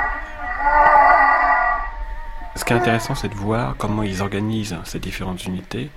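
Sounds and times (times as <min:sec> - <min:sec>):
humpback whale moaning call: 0:00.0 - 0:04.4
speech: 0:02.6 - 0:05.9.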